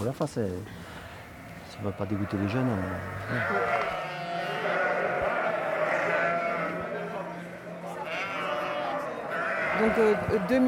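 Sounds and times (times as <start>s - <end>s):
speech: 0.1s - 0.8s, 1.8s - 4.0s, 9.8s - 10.6s
flock of ewes bleating before milking: 1.1s - 6.9s, 8.0s - 10.6s.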